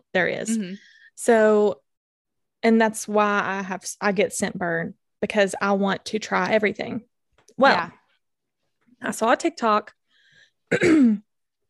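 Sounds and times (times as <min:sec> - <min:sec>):
speech: 0:00.1 - 0:01.8, 0:02.6 - 0:08.0, 0:09.0 - 0:10.0, 0:10.7 - 0:11.3
throat clearing with a falling voiced rasp: 0:10.7 - 0:11.2.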